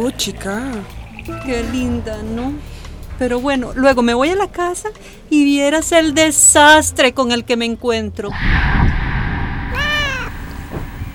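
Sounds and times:
speech: 0.0 - 9.0
house cat meowing: 9.7 - 10.5.

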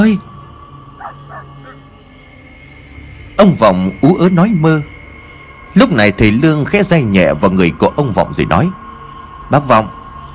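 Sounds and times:
speech: 0.0 - 0.3, 3.4 - 4.9, 5.7 - 8.8, 9.5 - 10.0
dog barking under a mango tree in a garden: 1.0 - 1.8.

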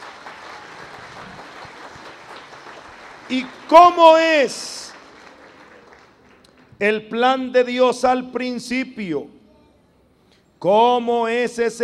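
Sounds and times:
audience clapping at a church talk on marriage and family: 0.0 - 6.8
speech: 3.3 - 4.7, 6.8 - 9.4, 10.6 - 11.8.

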